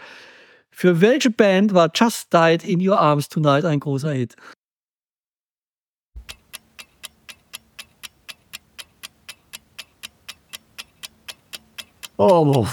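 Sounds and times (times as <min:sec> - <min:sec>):
speech: 0:00.8 - 0:04.6, 0:12.2 - 0:12.7
clock ticking as a quiz countdown timer: 0:06.2 - 0:12.7.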